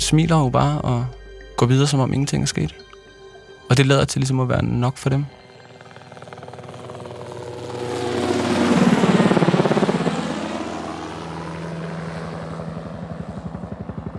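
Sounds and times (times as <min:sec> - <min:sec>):
speech: 0:00.1 - 0:02.9, 0:03.7 - 0:05.4
helicopter engine whine in flight: 0:02.4 - 0:14.1
helicopter rotor thumping in flight: 0:05.8 - 0:14.1.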